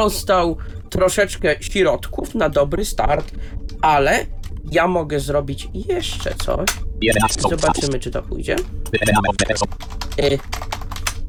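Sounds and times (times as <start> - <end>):
speech: 0.0 - 10.8
rapid typing on a computer keyboard: 8.9 - 11.2.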